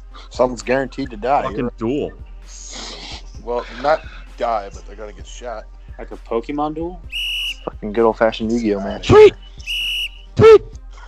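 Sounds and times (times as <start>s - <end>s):
speech: 0.3s - 2.7s, 3.4s - 9.4s
shrill whistle blasts: 7.1s - 7.7s, 9.1s - 10.7s.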